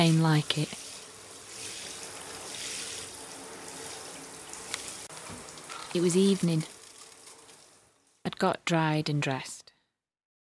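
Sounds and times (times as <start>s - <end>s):
speech: 0.0s - 0.8s, 6.0s - 6.8s, 8.4s - 9.6s
shower water running into a bath: 0.0s - 9.3s.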